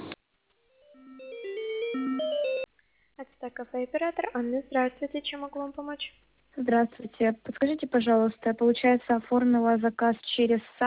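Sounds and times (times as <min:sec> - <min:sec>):
melodic electronic ringtone over a phone line during call transfer: 0:00.8 - 0:02.7
speech: 0:03.4 - 0:10.8.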